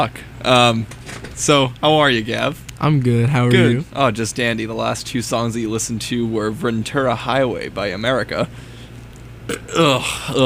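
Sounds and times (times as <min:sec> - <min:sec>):
speech: 0:00.0 - 0:08.7, 0:09.5 - 0:10.4
person burping after eating chili: 0:09.5 - 0:10.4.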